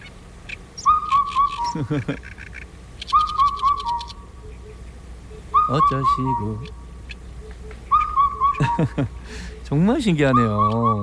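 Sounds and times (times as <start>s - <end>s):
thin high bird chirps: 0.0s - 11.0s
black-backed cuckoo whistled call: 0.8s - 1.9s, 3.0s - 6.8s, 7.4s - 9.1s, 10.2s - 11.0s
laughter: 1.7s - 2.2s, 8.6s - 9.4s
speech: 1.8s - 2.4s, 5.7s - 6.8s, 8.6s - 11.0s.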